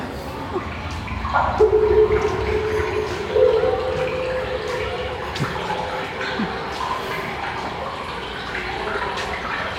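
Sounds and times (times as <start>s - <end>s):
water trickling and gurgling through an echoing channel: 0.0s - 9.7s
hollow ringing tones: 1.2s - 6.0s.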